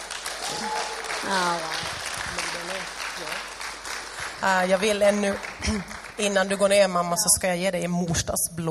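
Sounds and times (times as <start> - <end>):
crowd applauding: 0.0 - 6.8
speech: 0.5 - 1.9, 2.6 - 3.6, 4.4 - 8.7.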